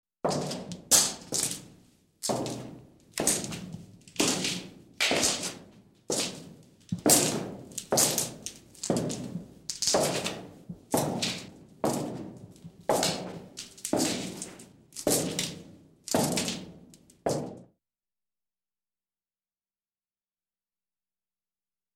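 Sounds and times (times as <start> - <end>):
footsteps in a corridor: 0.3 - 17.7.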